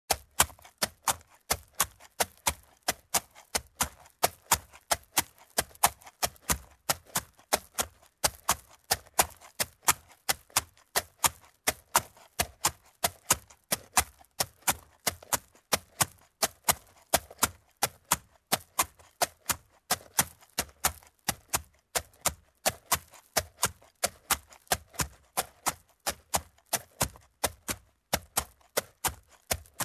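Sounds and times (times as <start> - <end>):
horse gaits on a sand surface: 0.1 - 29.8.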